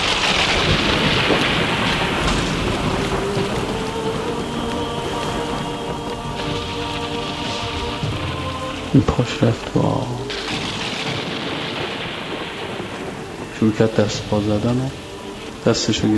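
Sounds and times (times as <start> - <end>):
low rolling rumble of thunder: 0.0 - 16.1
steady heavy rain pouring down: 0.0 - 16.1
speech: 9.0 - 10.3, 13.6 - 15.0, 15.6 - 16.1.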